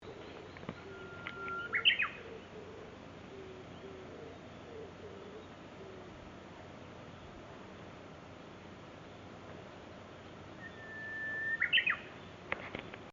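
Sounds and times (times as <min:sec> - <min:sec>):
Japanese bush warbler song: 0:00.0 - 0:13.1
steady background hiss: 0:00.0 - 0:13.1.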